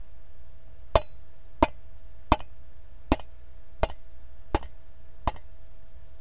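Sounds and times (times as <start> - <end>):
chopping wood: 1.0 - 2.5, 3.1 - 5.5.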